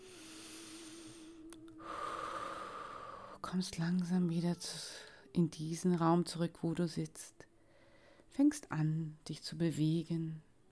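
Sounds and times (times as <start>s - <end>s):
deep strong breaths during a guided relaxation: 0.0s - 3.4s, 7.5s - 8.3s
speech: 3.5s - 7.4s, 8.4s - 10.5s.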